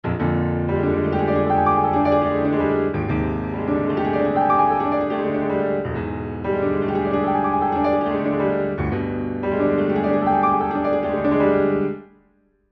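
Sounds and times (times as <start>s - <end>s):
Steinway B grand piano mid register: 0.0s - 12.7s.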